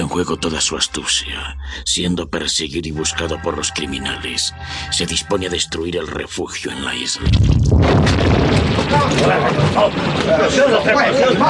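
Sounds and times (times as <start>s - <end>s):
agitated voices: 0.0s - 7.3s, 8.8s - 11.4s
speech: 0.1s - 11.4s
heavy rumbling and crashing of a shaking structure: 6.9s - 11.4s
loud explosion shaking a building: 7.2s - 10.8s.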